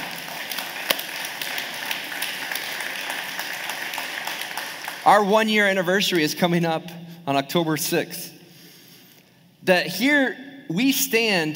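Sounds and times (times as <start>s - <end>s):
church audience applauding during a morning gathering: 0.0s - 5.3s
speech: 5.0s - 8.3s, 9.6s - 11.5s.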